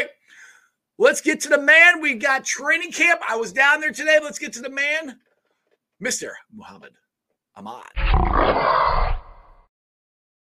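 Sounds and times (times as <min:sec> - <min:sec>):
speech: 0:01.0 - 0:05.3, 0:06.0 - 0:07.0, 0:07.6 - 0:09.2
rough growling roar sound effect in an introduction: 0:08.0 - 0:09.7.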